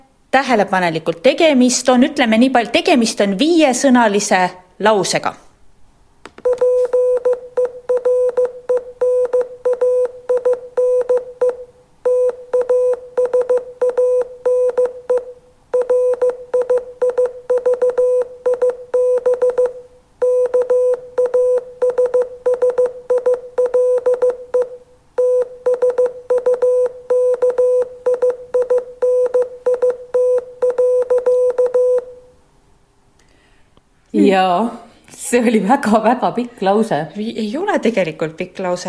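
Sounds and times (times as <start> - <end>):
speech: 0.4 - 5.4, 34.3 - 38.8
Morse code beeps: 6.4 - 32.2.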